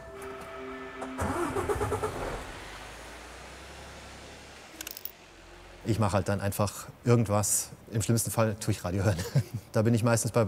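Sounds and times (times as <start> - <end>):
delivery truck engine starting: 0.8 - 6.8
speech: 5.9 - 10.4.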